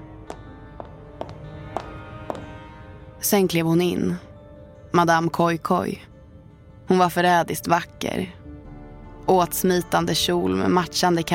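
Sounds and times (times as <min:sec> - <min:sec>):
high-heel clicks in a hard school corridor: 0:00.0 - 0:02.8
speech: 0:03.2 - 0:04.3, 0:04.9 - 0:06.1, 0:06.9 - 0:08.4, 0:09.3 - 0:11.3.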